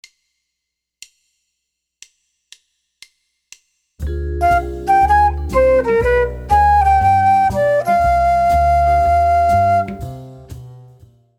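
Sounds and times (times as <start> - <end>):
C minor two five one chord progression: 4.4 - 10.0.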